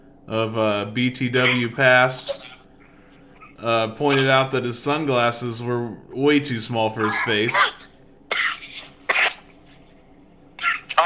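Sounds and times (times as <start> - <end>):
speech: 0.3 - 2.5, 3.6 - 7.7
person coughing: 7.0 - 9.6, 10.6 - 11.0.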